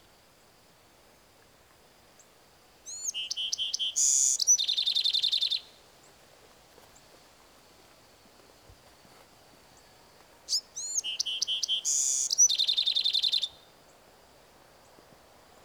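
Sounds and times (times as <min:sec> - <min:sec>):
Bewick's wren singing: 0:02.9 - 0:05.8, 0:10.5 - 0:13.7.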